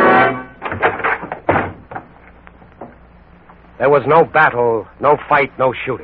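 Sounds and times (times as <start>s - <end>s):
bedroom door forced open by FBI agents with a crash: 0.0s - 2.2s
heavy thuds and knocks: 0.0s - 3.6s
speech: 3.8s - 6.0s.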